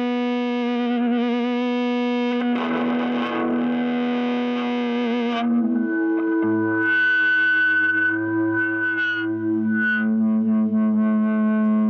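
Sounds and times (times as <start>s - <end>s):
distorted electric guitar through a small amplifier and speaker cabinet: 0.0s - 11.8s
low held tone: 5.4s - 11.8s.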